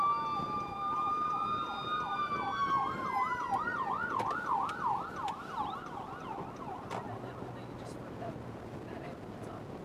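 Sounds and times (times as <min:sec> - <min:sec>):
ambulance siren passing: 0:00.0 - 0:07.0
road traffic rumbling: 0:00.0 - 0:09.8.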